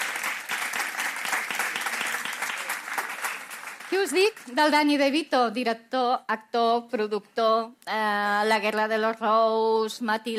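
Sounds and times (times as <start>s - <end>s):
audience applause: 0.0s - 4.5s
speech: 3.9s - 10.3s.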